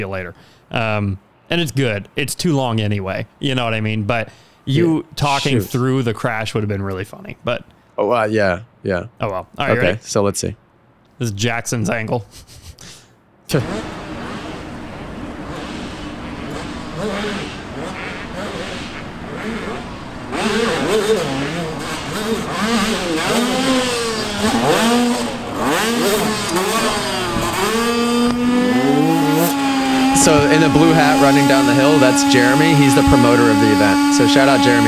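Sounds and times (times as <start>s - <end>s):
speech: 0.0s - 10.6s, 11.2s - 12.9s, 13.5s - 14.0s, 20.5s - 21.5s, 22.2s - 29.6s, 30.2s - 34.8s
racing dirt bike engine revving at a straight-rhythm race event: 13.5s - 34.8s.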